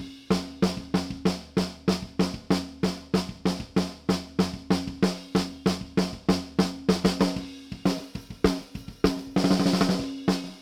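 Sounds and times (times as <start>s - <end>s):
snare drum without EQ: 0.0s - 10.6s.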